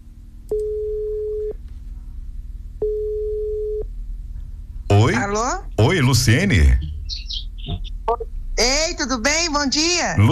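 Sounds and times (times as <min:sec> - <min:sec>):
faint hum: 0:00.0 - 0:10.2
low-pitched ringing tone of an outgoing telephone call: 0:02.8 - 0:03.8
speech: 0:05.0 - 0:07.3, 0:08.1 - 0:10.2.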